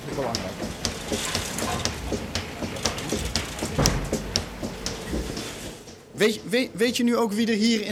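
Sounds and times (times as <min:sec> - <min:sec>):
milking machine milking a cow: 0:00.0 - 0:07.1
speech: 0:00.2 - 0:01.9, 0:06.2 - 0:07.9
thump: 0:00.6 - 0:06.0.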